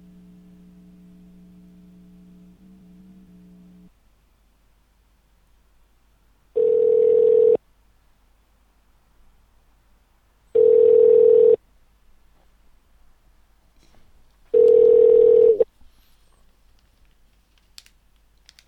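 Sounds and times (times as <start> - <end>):
phone line ringing while calling the operator: 6.6 - 7.6, 10.6 - 11.6, 14.5 - 15.6.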